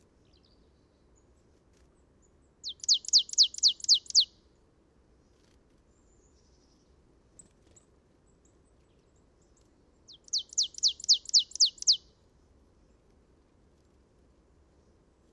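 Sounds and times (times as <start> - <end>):
marsh tit Poecile palustris falling chip notes: 2.7 - 4.3, 10.2 - 12.0.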